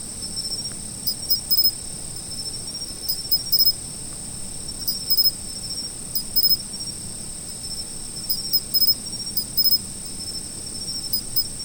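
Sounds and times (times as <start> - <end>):
autumn insects trilling: 0.2 - 3.9, 4.6 - 11.6
autumn insect pulsed chirps: 1.1 - 3.8, 4.7 - 6.8, 7.7 - 11.6.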